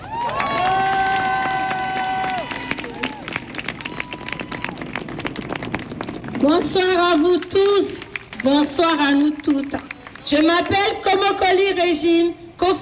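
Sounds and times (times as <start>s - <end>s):
crowd cheering and shrill whooping: 0.0s - 6.0s
dense clapping: 0.0s - 10.9s
speech: 6.4s - 12.8s.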